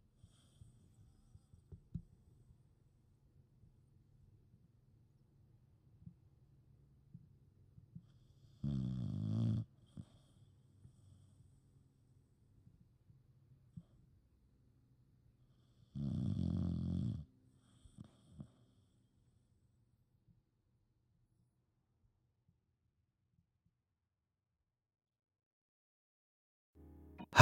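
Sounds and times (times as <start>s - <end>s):
quiet breathing: 0.0s - 3.0s, 7.9s - 8.8s, 9.6s - 12.8s, 13.6s - 14.5s, 15.3s - 16.1s, 17.2s - 20.0s
woman snoring: 16.0s - 17.2s.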